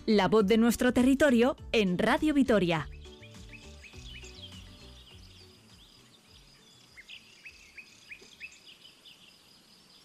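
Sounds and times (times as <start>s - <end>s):
speech: 0.1s - 3.0s
birds singing short bright calls: 2.6s - 10.0s
crickets chirping: 5.1s - 10.0s.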